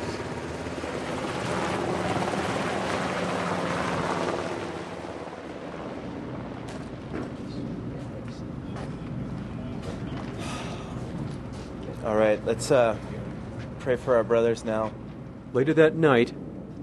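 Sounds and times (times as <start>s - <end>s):
helicopter rotor roar lifting off carrying bodies of two soldiers: 0.0s - 16.8s
speech: 12.1s - 13.2s, 13.8s - 16.4s.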